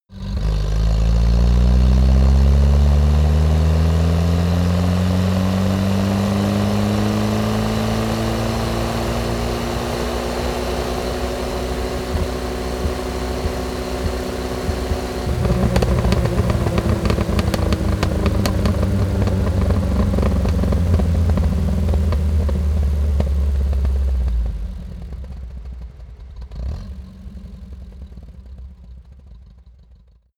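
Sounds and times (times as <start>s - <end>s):
UAZ 469 car accelerating fast and decelerating: 0.2s - 25.8s.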